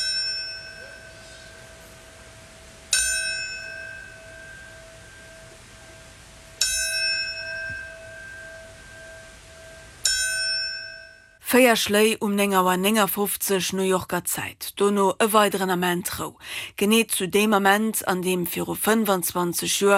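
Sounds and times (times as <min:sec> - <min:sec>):
memorial bell tolling: 0:00.0 - 0:11.4
speech: 0:11.5 - 0:19.9.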